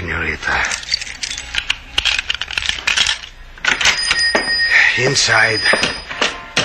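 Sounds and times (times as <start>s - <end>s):
metal keys jingling and rattling at a lock: 0.6s - 4.6s
speech: 5.0s - 6.0s.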